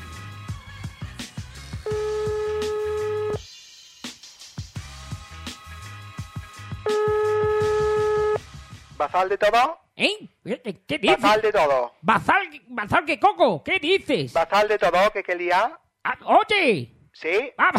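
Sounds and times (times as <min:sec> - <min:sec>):
telephone ringback tones of an outgoing call: 0:01.9 - 0:03.4, 0:06.9 - 0:08.4
speech: 0:09.0 - 0:17.7.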